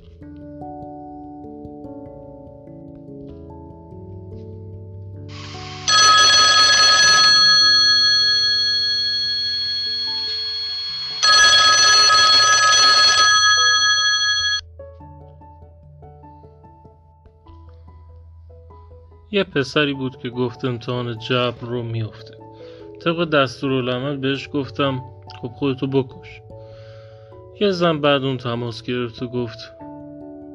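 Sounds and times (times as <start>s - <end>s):
soft steady musical background: 0.0s - 30.5s
old-style telephone bell ringing with a buzzing trill: 5.4s - 14.6s
speech: 19.4s - 22.4s, 23.0s - 26.4s, 27.6s - 29.8s.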